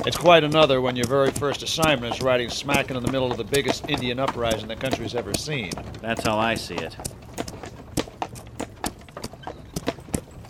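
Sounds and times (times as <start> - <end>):
speech: 0.0 - 7.2
horse hooves clip-clopping at a walking pace pulling a wagon: 0.0 - 10.4.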